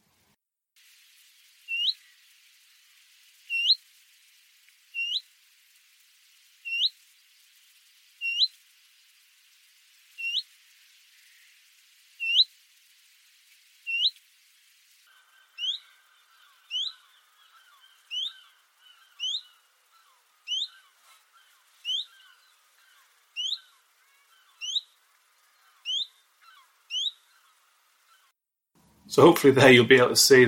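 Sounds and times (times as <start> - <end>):
faint noise: 0.0 - 30.4
willow warbler and chiffchaff hoo-eet calls: 1.6 - 2.3, 3.4 - 3.8, 4.9 - 5.3, 6.6 - 7.0, 8.2 - 8.6, 10.2 - 11.6, 12.2 - 12.5, 13.8 - 14.2, 15.1 - 28.3
speech: 29.1 - 30.4.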